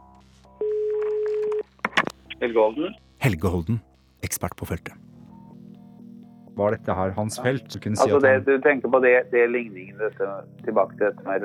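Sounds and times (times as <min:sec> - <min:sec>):
telephone ringback tone: 0:00.5 - 0:01.7
speech: 0:02.4 - 0:05.1, 0:06.6 - 0:11.4.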